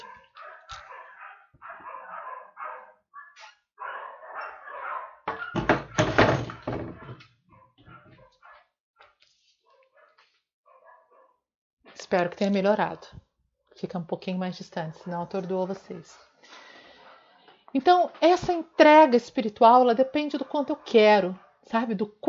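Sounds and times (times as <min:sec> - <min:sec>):
several dogs barking outside a window: 0:00.0 - 0:06.0, 0:06.9 - 0:08.7, 0:09.7 - 0:11.4, 0:14.9 - 0:16.2, 0:16.8 - 0:17.6, 0:20.3 - 0:21.7
speech: 0:12.1 - 0:13.2, 0:13.8 - 0:16.3, 0:17.7 - 0:22.2.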